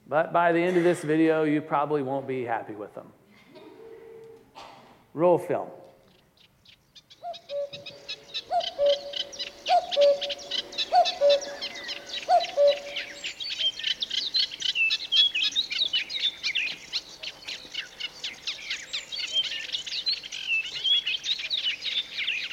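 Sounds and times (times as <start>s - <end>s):
speech: 0.1s - 3.2s, 5.2s - 5.8s
dense chorus of high chirping and twittering birds: 6.0s - 22.5s
low hooting two-note bird calls: 7.2s - 14.1s.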